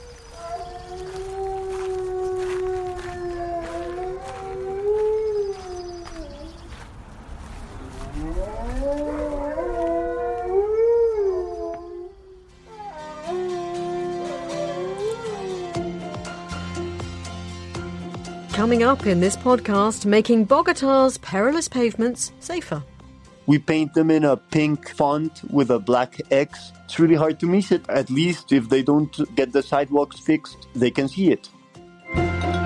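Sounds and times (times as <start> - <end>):
wolf-malamute hybrid dog howling: 0.0 - 6.7, 7.8 - 16.4
speech: 18.7 - 22.9, 23.5 - 31.6.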